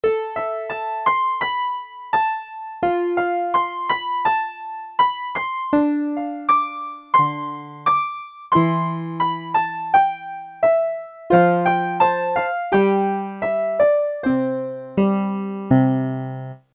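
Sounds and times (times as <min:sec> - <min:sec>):
tentative piano playing: 0:00.0 - 0:16.7.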